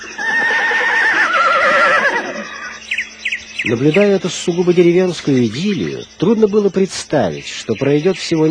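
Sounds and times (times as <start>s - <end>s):
young mare neighing impatiently: 0.0s - 2.8s
speech: 3.7s - 8.4s.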